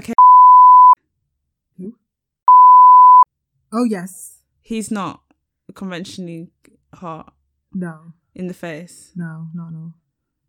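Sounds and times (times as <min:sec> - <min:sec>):
loud flat electronic censor bleep tone: 0:00.2 - 0:01.0, 0:02.5 - 0:03.2
speech: 0:03.7 - 0:10.0.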